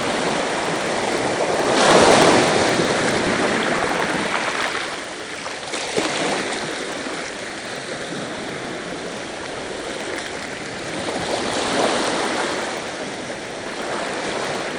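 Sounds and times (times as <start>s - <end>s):
ocean waves washing in surf: 0.0s - 14.7s.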